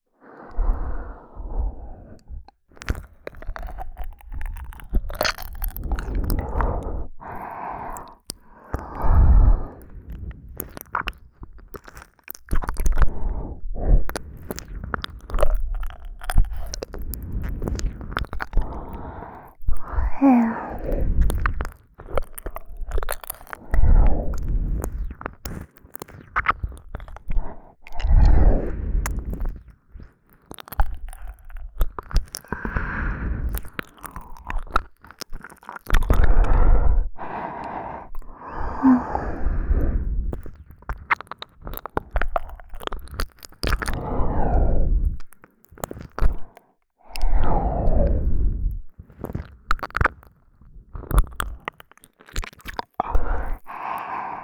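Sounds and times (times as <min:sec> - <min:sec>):
ASMR licking deep inside the right ear: 0:00.4 - 0:54.4.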